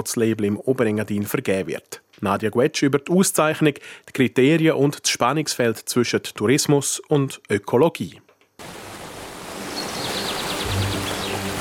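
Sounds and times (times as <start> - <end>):
speech: 0.0 - 8.7
mountain stream rushing and babbling: 8.6 - 11.5
faint bird chirps: 9.6 - 11.5.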